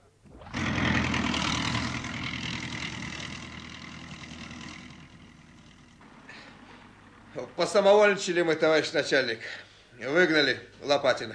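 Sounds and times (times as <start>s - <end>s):
tractor engine starting up and running: 0.3s - 8.3s
speech: 7.4s - 11.3s.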